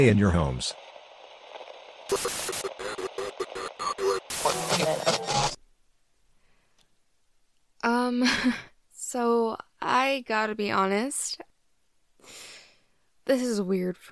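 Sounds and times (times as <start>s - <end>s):
speech: 0.0s - 0.8s, 2.1s - 2.8s, 4.8s - 5.6s, 8.1s - 11.5s, 13.3s - 14.1s
harsh radio static crackling: 0.0s - 5.6s
garbled radio tones: 2.0s - 5.6s
laughter: 2.1s - 5.5s.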